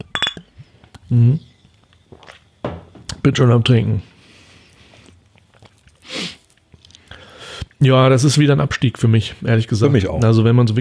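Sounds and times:
glasses of cola-and-orange soft drink clinking in a toast: 0.0 - 0.6
speech: 1.1 - 1.5, 3.2 - 4.1, 7.8 - 10.7.

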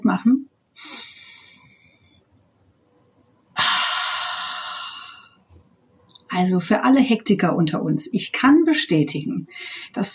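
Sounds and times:
speech: 0.1 - 0.9, 6.4 - 10.1
deliberate deep breath drawn and released: 0.8 - 2.2, 3.6 - 5.4.

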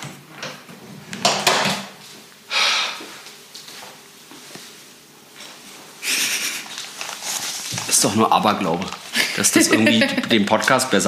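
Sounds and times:
household shuffling: 3.0 - 10.3
laughter: 6.0 - 6.7, 9.2 - 10.4
speech: 8.0 - 11.0.

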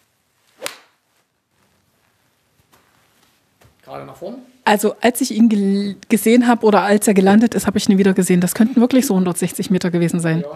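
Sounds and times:
golf iron striking a ball off the ground: 0.6 - 0.9
speech: 3.9 - 10.5.

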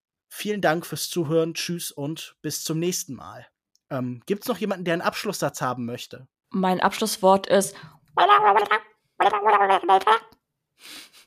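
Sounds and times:
speech: 0.4 - 11.1
voice imitating a cartoonish video game animal's babble: 8.2 - 10.4.

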